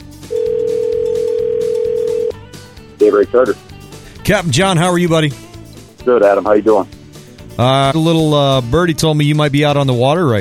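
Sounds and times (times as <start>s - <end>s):
telephone dial tone: 0.3s - 2.4s
speech: 3.1s - 3.7s, 4.3s - 7.0s, 7.6s - 10.4s.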